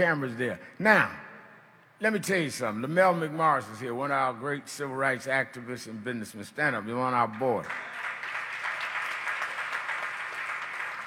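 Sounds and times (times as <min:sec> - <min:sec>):
speech: 0:00.0 - 0:01.2, 0:02.0 - 0:08.0
audience applauding: 0:07.4 - 0:11.0.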